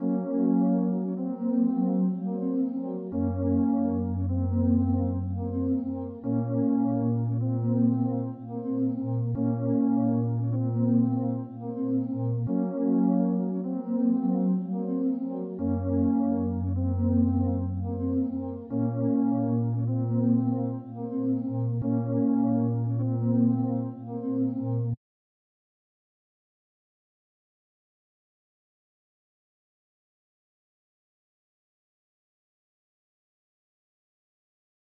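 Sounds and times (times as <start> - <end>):
RnB synth pad melody: 0.0 - 25.0.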